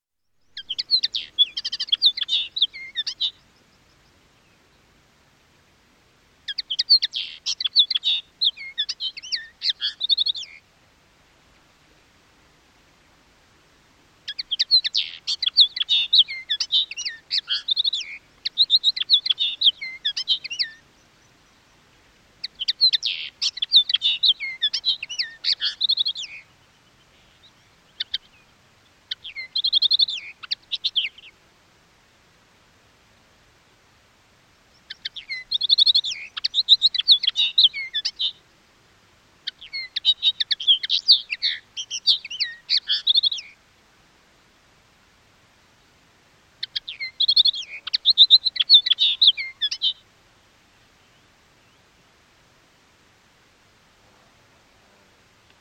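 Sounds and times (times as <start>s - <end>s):
linnet singing: 0.4s - 4.6s, 6.5s - 10.6s, 14.3s - 21.6s, 22.4s - 31.3s, 34.8s - 38.4s, 39.4s - 43.6s, 46.6s - 50.0s.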